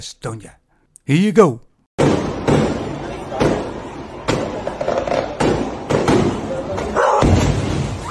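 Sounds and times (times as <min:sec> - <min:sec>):
speech: 0:00.0 - 0:02.3
fireworks banging: 0:02.0 - 0:08.0.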